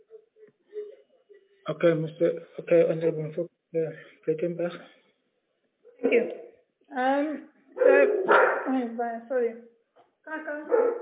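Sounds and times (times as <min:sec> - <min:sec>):
speech: 0:01.7 - 0:05.0, 0:06.1 - 0:09.7, 0:10.3 - 0:11.0
dogs barking: 0:07.8 - 0:08.8, 0:10.7 - 0:11.0.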